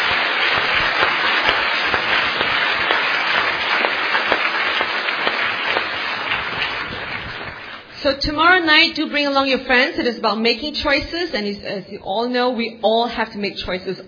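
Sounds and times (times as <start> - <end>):
audience applause: 0.0 - 7.9
speech: 8.0 - 14.0.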